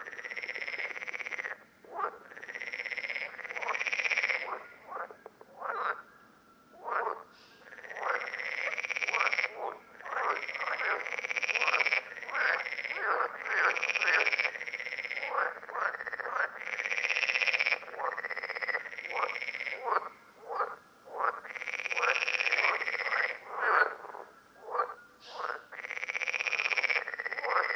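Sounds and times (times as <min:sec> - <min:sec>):
parsley frogs chorus croaking at Lerouville, Lorraine, France: 0:00.0 - 0:27.7.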